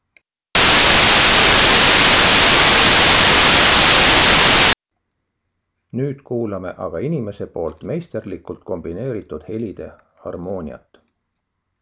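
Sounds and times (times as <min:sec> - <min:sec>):
steady broadband white noise hiss: 0:00.6 - 0:04.8
speech: 0:06.0 - 0:10.9.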